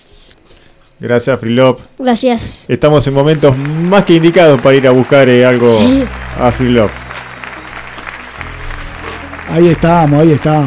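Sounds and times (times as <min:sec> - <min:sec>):
speech: 0:01.0 - 0:07.0, 0:09.5 - 0:10.6
applause: 0:03.2 - 0:10.6.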